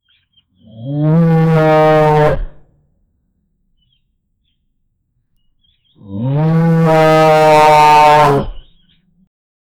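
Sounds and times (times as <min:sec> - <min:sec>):
cow mooing aggressively on a farm: 0:00.8 - 0:02.6, 0:06.0 - 0:08.7.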